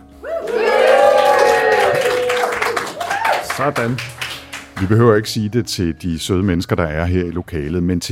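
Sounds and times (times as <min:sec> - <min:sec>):
audience voices whooping and cheering: 0:00.0 - 0:03.9
live audience applauding at a science fiction, fantasy and horror conference: 0:00.2 - 0:05.0
speech: 0:03.6 - 0:04.2, 0:04.8 - 0:08.1.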